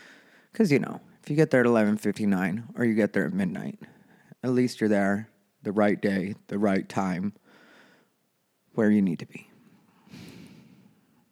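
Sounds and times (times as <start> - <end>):
speech: 0.6 - 7.4, 8.8 - 9.5
heavy breathy exhale: 10.0 - 11.0.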